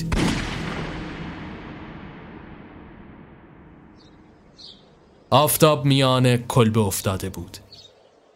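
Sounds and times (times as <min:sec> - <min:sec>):
gunshot with booming echo: 0:00.0 - 0:04.4
speech: 0:05.3 - 0:07.6.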